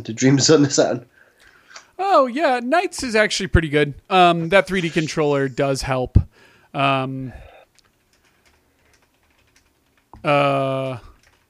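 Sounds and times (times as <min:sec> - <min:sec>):
speech: 0:00.0 - 0:01.2, 0:02.0 - 0:07.5, 0:10.2 - 0:11.1
typing on a computer keyboard: 0:07.7 - 0:11.4.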